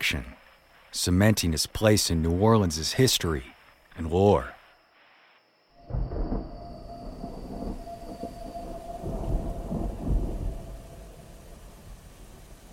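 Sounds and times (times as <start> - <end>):
speech: 0.0 - 4.6
deep thunder rumbling and rolling: 5.8 - 12.7
heavy rain at night in New Orleans: 5.8 - 12.7.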